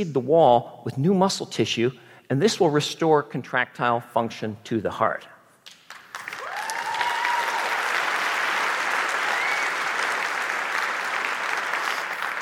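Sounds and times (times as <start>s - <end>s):
speech: 0.0s - 5.3s
large audience applause: 5.9s - 12.4s
whistle or cheer: 6.3s - 7.8s, 9.2s - 9.9s.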